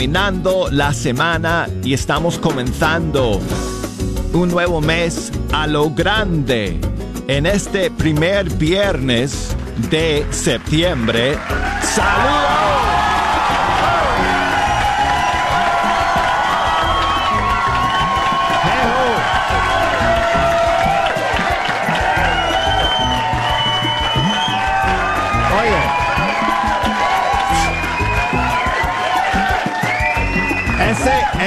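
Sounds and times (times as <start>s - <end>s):
speech: 0.0s - 12.9s
scattered clapping: 8.9s - 31.4s
red-haired man shouting and cheering with excited whoops: 11.0s - 14.8s, 16.8s - 21.2s, 24.0s - 29.0s, 30.6s - 31.4s
noisy crowd: 11.1s - 31.4s.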